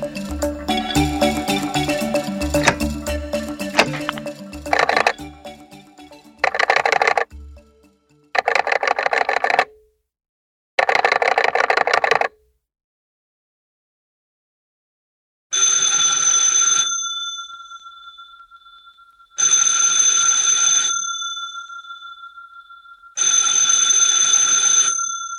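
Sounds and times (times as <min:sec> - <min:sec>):
telephone ringing in loud rattling bursts: 0:00.0 - 0:07.3, 0:08.4 - 0:09.7, 0:10.8 - 0:12.3, 0:15.6 - 0:25.3
clear bell-like tones: 0:00.0 - 0:08.0, 0:15.6 - 0:25.3.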